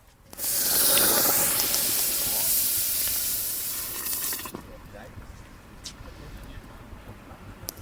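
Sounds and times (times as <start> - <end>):
hot basalt stone hissing in brewing wort: 0.3 - 4.6
wort bubbling and sizzling around hot basalt stone: 0.3 - 4.8.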